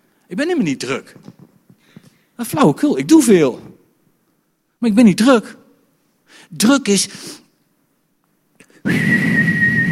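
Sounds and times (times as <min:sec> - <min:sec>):
speech: 0:00.3 - 0:01.4, 0:02.4 - 0:03.7, 0:04.8 - 0:05.6, 0:06.3 - 0:07.4, 0:08.8 - 0:09.5
kettle whistling over hissing steam: 0:08.9 - 0:09.9.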